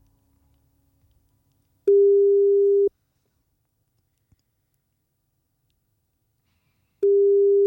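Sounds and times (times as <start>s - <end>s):
telephone ringing tone on a call: 1.9s - 2.9s, 7.0s - 7.6s.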